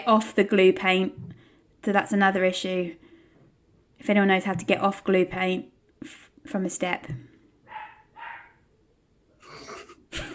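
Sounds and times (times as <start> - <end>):
speech: 0.0 - 3.0, 4.0 - 7.3
dog barking: 7.7 - 8.6.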